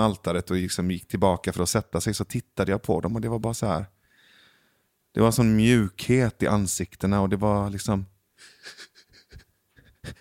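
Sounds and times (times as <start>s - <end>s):
speech: 0.0s - 4.0s, 5.1s - 8.9s
person imitating rapid panting breathing: 8.4s - 10.2s.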